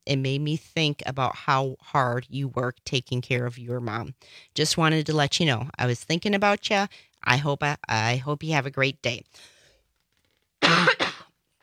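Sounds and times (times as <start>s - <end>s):
speech: 0.1s - 9.5s, 10.6s - 11.0s
person coughing with a tickle in the throat: 10.6s - 11.3s.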